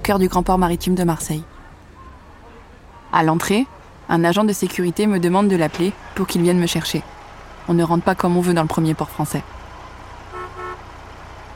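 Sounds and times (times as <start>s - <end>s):
speech: 0.0s - 1.5s, 3.1s - 9.6s
low rumble of engine and traffic at the port of Marseille: 0.0s - 11.5s
van horn honking at the maritime port of Marseille: 10.3s - 10.9s.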